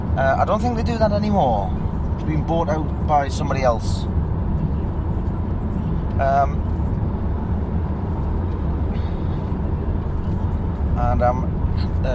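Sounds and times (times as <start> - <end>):
car driving along a road past an old tank factory: 0.0 - 12.1
speech: 0.2 - 4.2, 6.2 - 6.7, 11.0 - 12.1.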